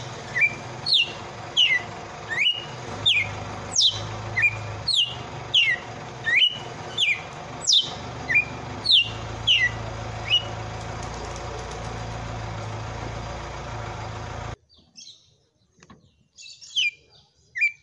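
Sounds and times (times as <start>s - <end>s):
female red-cowled cardinal song of downslurred whistles: 0.3s - 10.5s.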